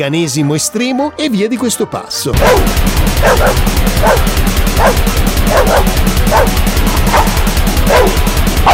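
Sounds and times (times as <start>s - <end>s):
speech: 0.0s - 6.6s
loud distorted grindcore music with pounding low-end rhythm: 2.3s - 8.7s
dogs barking and yipping in a grindcore song: 2.4s - 8.7s.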